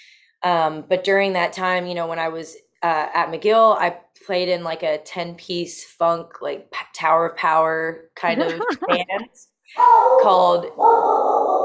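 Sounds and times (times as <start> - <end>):
speech: 0.4 - 11.6
laughter: 8.3 - 9.2
dogs barking in a home: 9.8 - 11.6.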